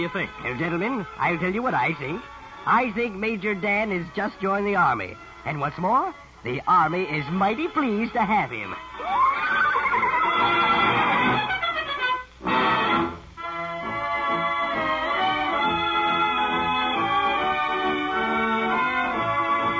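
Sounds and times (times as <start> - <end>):
speech: 0.0 - 9.2
horse whinnying while racing across parade grounds: 9.0 - 11.6
brass band playing lively music on parade grounds: 9.0 - 19.7.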